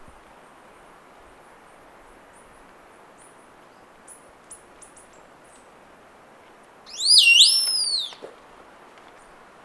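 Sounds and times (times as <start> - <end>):
Dusky Piha Lipaugus fuscocinereus calling: 6.9 - 8.3.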